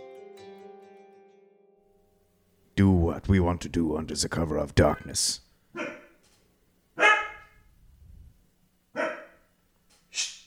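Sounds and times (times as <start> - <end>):
speech: 2.8 - 5.4
stray dog barking loudly in a bustling town: 5.8 - 6.2, 7.0 - 7.6, 9.0 - 9.5.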